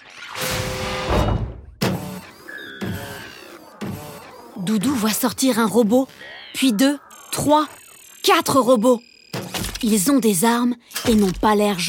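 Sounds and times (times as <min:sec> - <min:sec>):
sci-fi mechanical door whirring and hissing open: 0:00.4 - 0:04.6
speech: 0:04.7 - 0:09.1, 0:09.8 - 0:11.8.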